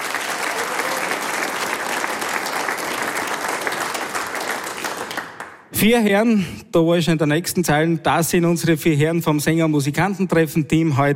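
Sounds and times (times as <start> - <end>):
large audience applause: 0.0 - 5.7
speech: 5.8 - 11.1.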